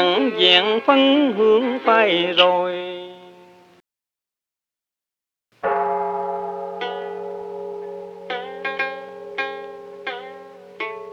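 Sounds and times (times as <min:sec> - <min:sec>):
speech: 0:00.0 - 0:03.2
Buddhist temple bell ringing: 0:05.6 - 0:11.1
sustained musical tones of a Vietnamese cải lương opera piece: 0:05.9 - 0:11.1.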